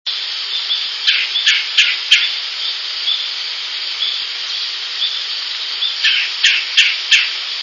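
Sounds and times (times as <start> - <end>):
tree frogs at Mohican Outdoor Center, Delaware Water Gap: 0.1 - 7.6
red-bellied woodpecker at Mohican Outdoor Center, Delaware Water Gap: 0.7 - 2.3, 5.8 - 7.4.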